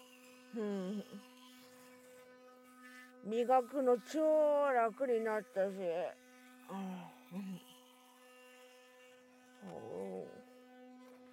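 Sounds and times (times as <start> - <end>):
electric toothbrush humming: 0.0 - 11.3
speech: 0.5 - 1.4, 3.2 - 7.7.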